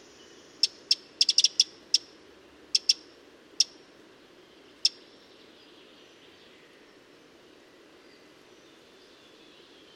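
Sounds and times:
Eurasian wren hard ticking calls, Troglodytes troglodytes: 0.6 - 2.1, 2.7 - 3.8, 4.8 - 5.1.

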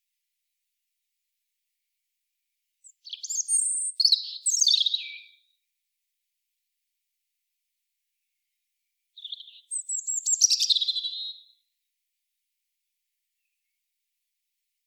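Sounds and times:
European robin Erithacus rubecula high sliding whistles and rattling trills: 2.8 - 5.6, 9.2 - 11.6.

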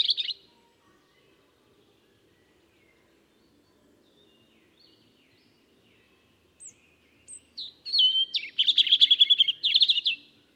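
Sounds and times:
European robin Erithacus rubecula singing: 0.0 - 10.4.

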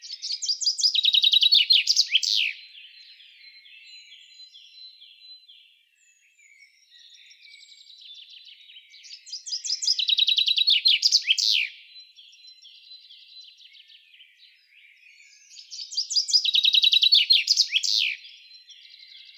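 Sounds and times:
common chaffinch Fringilla coelebs singing: 0.0 - 3.1, 6.6 - 13.6, 15.3 - 19.3.

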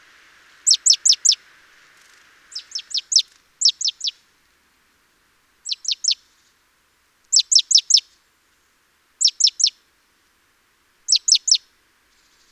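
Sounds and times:
Great tit Parus major calls: 0.0 - 4.2, 5.6 - 6.2, 7.3 - 8.0, 9.2 - 9.8, 11.1 - 11.6.

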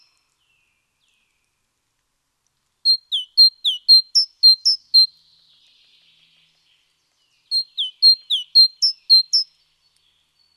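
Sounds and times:
great tit (Parus major) singing bright see-saw notes: 2.9 - 6.2, 7.4 - 9.5.

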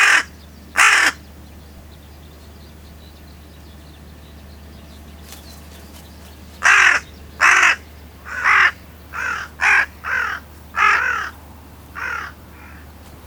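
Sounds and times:
carrion crow giving loud hoarse caws: 0.0 - 1.2, 6.6 - 12.9
low background hum: 0.0 - 13.2.

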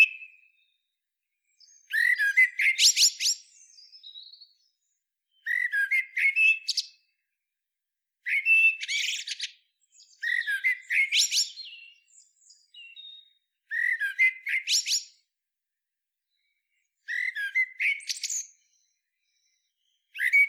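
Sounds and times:
Eurasian blackbird Turdus merula singing: 0.0 - 0.8, 1.5 - 7.2, 8.2 - 15.2, 16.3 - 20.4.

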